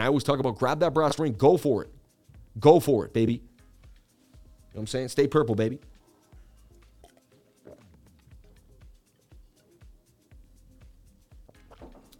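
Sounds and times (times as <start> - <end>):
speech: 0.0 - 2.0, 2.6 - 3.5, 4.7 - 5.9
person gulping water: 6.8 - 8.2, 11.5 - 12.1.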